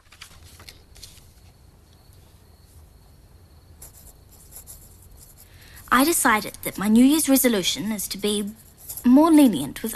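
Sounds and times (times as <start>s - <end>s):
soft hiss: 0.4s - 9.9s
pen writing in a diary: 3.8s - 7.4s, 8.2s - 9.5s
speech: 5.9s - 9.9s.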